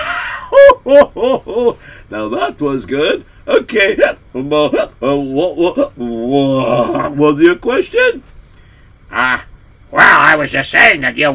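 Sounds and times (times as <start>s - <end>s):
speech: 0.8s - 8.4s, 9.1s - 11.3s
person burping loudly: 6.5s - 7.2s.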